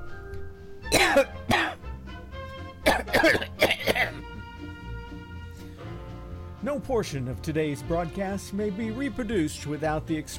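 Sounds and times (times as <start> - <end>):
soft sustained musical backing: 0.0 - 10.3
harsh raspy coughs: 0.9 - 1.8, 2.8 - 4.3
speech: 1.2 - 1.4, 6.8 - 10.3.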